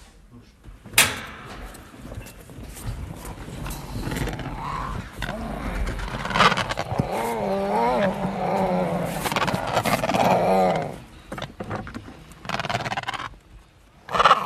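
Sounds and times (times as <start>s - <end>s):
penguins grunting and squawking released onto their nest with eggs: 2.9s - 13.4s, 14.0s - 14.4s.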